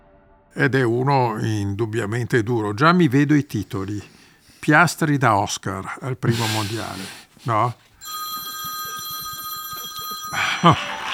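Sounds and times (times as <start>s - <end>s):
laughter: 0.6s - 4.1s, 4.7s - 7.8s, 8.4s - 11.1s
speech: 0.6s - 7.9s, 10.6s - 10.9s
telephone bell ringing: 8.0s - 11.1s.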